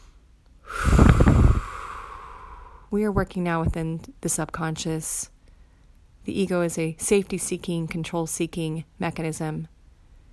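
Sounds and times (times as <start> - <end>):
deep breath during a guided relaxation session: 0.0 - 2.9
speech: 2.9 - 5.3, 6.2 - 9.7.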